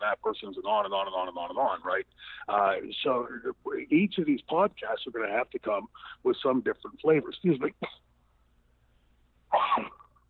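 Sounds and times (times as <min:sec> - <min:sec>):
speech: 0:00.1 - 0:08.1, 0:09.5 - 0:10.0
person sneezing: 0:09.5 - 0:10.1.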